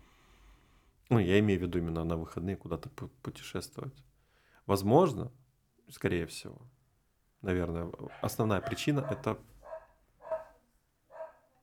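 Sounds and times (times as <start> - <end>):
speech: 1.1 - 4.1, 4.7 - 6.8, 7.4 - 9.5
dog barking: 8.1 - 11.6.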